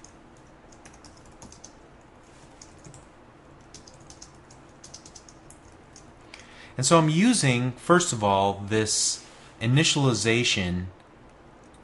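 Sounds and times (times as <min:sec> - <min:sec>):
typing on a computer keyboard: 0:00.0 - 0:01.8, 0:02.6 - 0:06.1, 0:11.6 - 0:11.8
low hum: 0:00.0 - 0:11.8
speech: 0:06.8 - 0:11.0.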